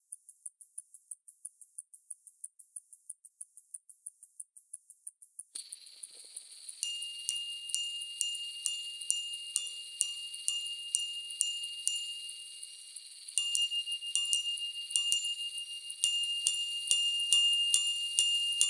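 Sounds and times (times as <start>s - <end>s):
bell ringing: 6.8s - 18.5s.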